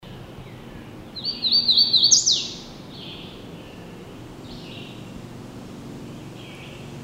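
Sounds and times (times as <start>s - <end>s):
hooded warbler singing: 0.1s - 5.3s, 6.0s - 7.0s.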